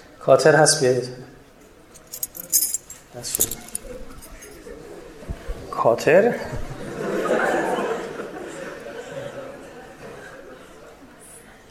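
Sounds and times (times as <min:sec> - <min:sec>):
speech: 0:00.2 - 0:01.4, 0:03.2 - 0:03.7, 0:05.8 - 0:07.5
people talking quietly: 0:00.8 - 0:11.6
bunch of computer-cut keys jangling: 0:01.9 - 0:04.7
laughter: 0:06.8 - 0:11.0.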